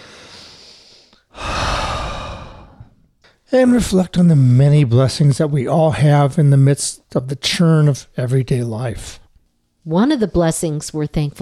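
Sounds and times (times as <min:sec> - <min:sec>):
deep breath inhale and exhale: 0:00.0 - 0:03.4
speech: 0:03.5 - 0:09.2, 0:09.8 - 0:11.3.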